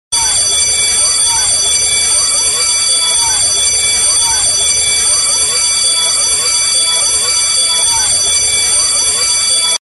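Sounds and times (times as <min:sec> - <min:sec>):
school bell ringtone for mobile phone: 0:00.1 - 0:09.8.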